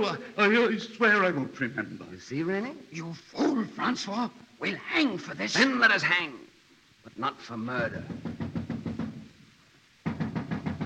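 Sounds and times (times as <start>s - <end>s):
speech: 0.0s - 6.4s, 7.1s - 8.3s
king's watch knocking on a door: 7.8s - 9.3s, 10.0s - 10.8s.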